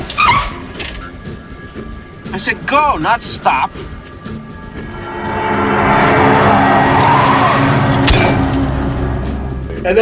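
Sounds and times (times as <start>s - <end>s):
car tires screeching against the road: 0.0s - 9.9s
speech: 2.3s - 3.9s
police car engine accelerating hard: 4.2s - 9.7s.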